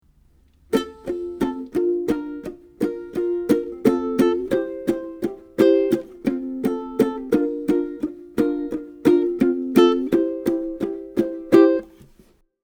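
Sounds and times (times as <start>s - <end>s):
ukulele chugs: 0.6s - 12.3s.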